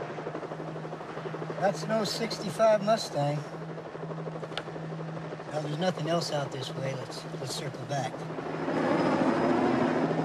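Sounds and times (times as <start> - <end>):
helicopter flying overhead: 0.0 - 10.2
speech: 1.6 - 3.6, 5.6 - 9.0.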